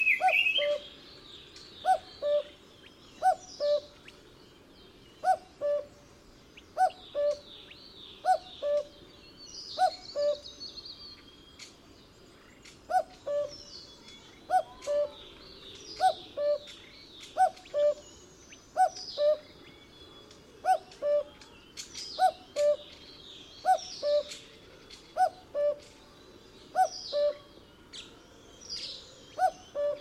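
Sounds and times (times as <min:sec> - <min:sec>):
cuckoo calling: 0:00.0 - 0:00.9, 0:01.8 - 0:02.6, 0:03.2 - 0:04.2, 0:05.2 - 0:05.9, 0:06.8 - 0:09.0, 0:09.8 - 0:10.4, 0:12.6 - 0:18.1, 0:18.8 - 0:19.6, 0:20.6 - 0:23.0, 0:23.6 - 0:26.0, 0:26.6 - 0:28.1, 0:28.8 - 0:29.9.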